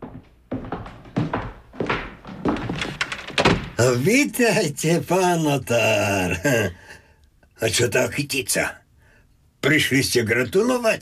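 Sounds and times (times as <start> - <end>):
door being opened with wooden thunks clicks and knocks: 1.2 - 3.8
speech: 3.8 - 6.9, 7.6 - 8.8, 9.6 - 10.9.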